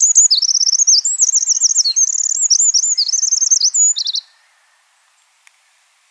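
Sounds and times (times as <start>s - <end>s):
Eurasian wren Troglodytes troglodytes song: 0.0s - 5.8s.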